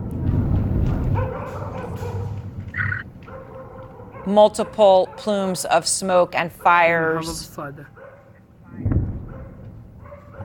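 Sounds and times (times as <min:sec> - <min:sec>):
steady low rumble of outdoor noise: 0:00.0 - 0:10.4
dogs barking and yipping in Sana'a province: 0:01.0 - 0:05.7, 0:07.9 - 0:10.4
sharper high-pitched dog yelps: 0:02.8 - 0:03.0
speech: 0:04.2 - 0:08.0.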